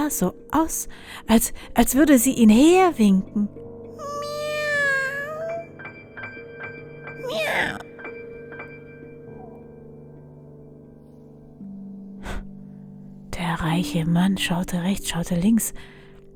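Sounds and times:
speech: 0:00.0 - 0:04.2, 0:13.6 - 0:16.3
cat meowing: 0:04.0 - 0:05.7, 0:07.2 - 0:07.8.

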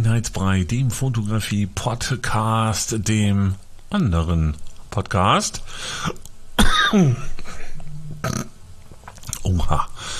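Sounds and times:
speech: 0:00.1 - 0:06.3, 0:06.9 - 0:07.3, 0:08.2 - 0:08.5, 0:09.4 - 0:10.1
heavy cough with rough throaty tail: 0:06.6 - 0:08.4.

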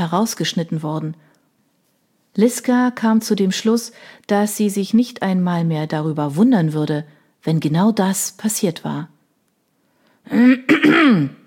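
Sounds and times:
speech: 0:00.0 - 0:01.3, 0:02.4 - 0:09.2, 0:10.3 - 0:11.4
person clearing throat: 0:10.3 - 0:11.4.

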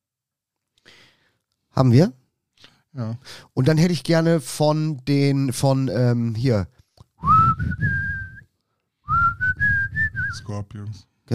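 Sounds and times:
speech: 0:01.8 - 0:02.2, 0:02.9 - 0:08.2, 0:10.3 - 0:11.3
person whistling a short melody: 0:07.2 - 0:08.5, 0:09.1 - 0:10.5.

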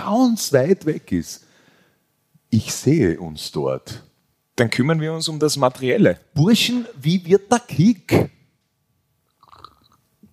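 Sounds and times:
speech: 0:00.1 - 0:01.5, 0:02.5 - 0:08.3
faint swallow-like gulp: 0:09.4 - 0:10.0
person slurping espresso: 0:09.4 - 0:10.0.

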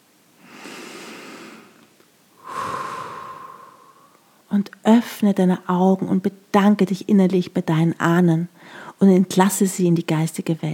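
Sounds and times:
deep breath in and out: 0:00.4 - 0:01.8, 0:02.4 - 0:04.4, 0:08.6 - 0:09.0
speech: 0:04.6 - 0:10.7.

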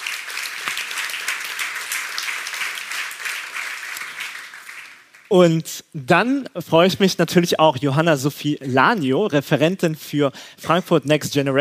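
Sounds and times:
audience applause: 0:00.0 - 0:05.3
speech: 0:05.3 - 0:11.5.

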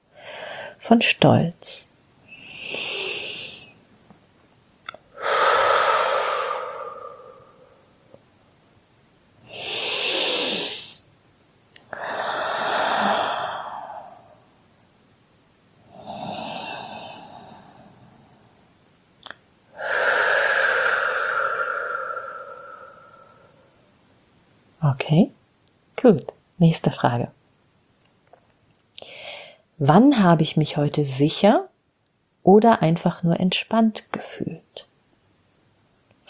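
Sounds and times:
slow deep breaths during a guided relaxation exercise: 0:00.1 - 0:00.8, 0:02.3 - 0:03.8, 0:05.1 - 0:08.2, 0:09.5 - 0:11.0, 0:11.8 - 0:14.6, 0:15.8 - 0:18.7, 0:19.6 - 0:24.0, 0:29.0 - 0:29.7
speech: 0:00.9 - 0:01.9, 0:26.6 - 0:27.4, 0:29.8 - 0:31.6, 0:32.5 - 0:34.5.

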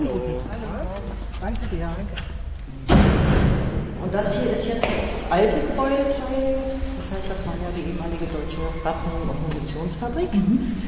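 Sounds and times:
speech: 0:01.4 - 0:02.4, 0:04.0 - 0:10.8
heavy door to the outdoor courtyard shoved open: 0:02.8 - 0:04.3.

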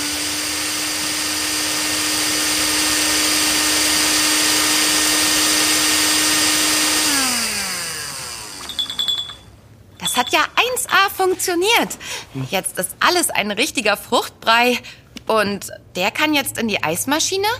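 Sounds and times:
immersion blender whirring while pureeing fruit pulp: 0:00.0 - 0:09.1
speech: 0:10.2 - 0:17.5.

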